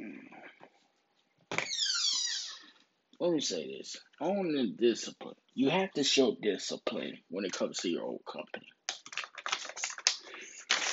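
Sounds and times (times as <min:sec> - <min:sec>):
speech: 0:03.2 - 0:08.8
sheet of paper being torn up: 0:09.4 - 0:10.9.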